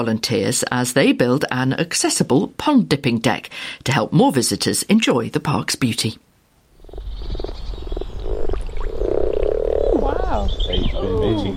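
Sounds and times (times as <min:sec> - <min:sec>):
speech: 0:00.0 - 0:06.2, 0:10.3 - 0:11.5
chorus of mating frogs croaking: 0:06.7 - 0:11.5.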